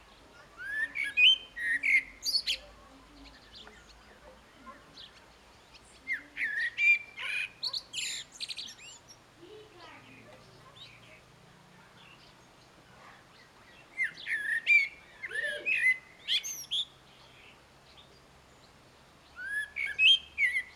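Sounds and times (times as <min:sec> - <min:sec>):
common blackbird Turdus merula singing fluted warbles and twittering: 0:00.0 - 0:11.3, 0:11.9 - 0:20.7.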